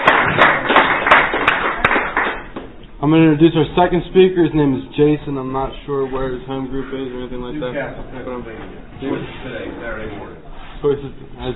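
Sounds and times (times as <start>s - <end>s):
audience applause: 0.0s - 2.7s
speech: 3.0s - 11.5s.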